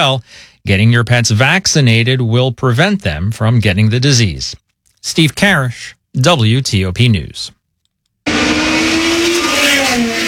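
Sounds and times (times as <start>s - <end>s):
speech: 0.0s - 7.6s
race car engine roaring at a grand prix: 8.3s - 10.2s.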